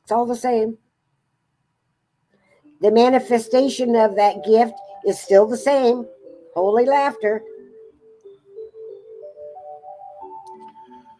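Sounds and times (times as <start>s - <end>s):
speech: 0.1s - 0.8s, 2.8s - 7.5s
clock sounding a soft melody of rising tones: 2.6s - 11.1s.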